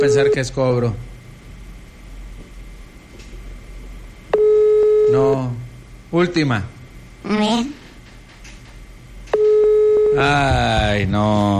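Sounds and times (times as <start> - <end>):
telephone ringback tone from an unanswered call: 0.0 - 0.5, 4.4 - 5.4, 9.4 - 10.5
speech: 0.0 - 1.1, 5.1 - 7.8, 10.2 - 11.5.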